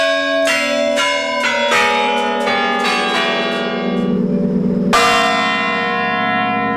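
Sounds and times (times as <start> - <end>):
mechanical tower clock chiming a descending run of bell notes: 0.0 - 6.7.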